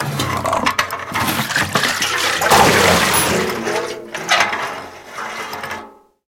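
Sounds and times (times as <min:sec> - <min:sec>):
crash of something falling: 0:01.2 - 0:04.8
water spilling from a metal basin: 0:01.3 - 0:04.2.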